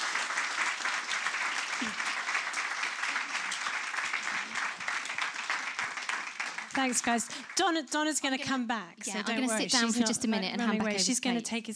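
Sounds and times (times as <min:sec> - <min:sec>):
audience applauding a speaker: 0:00.0 - 0:07.7
speech: 0:06.8 - 0:11.7.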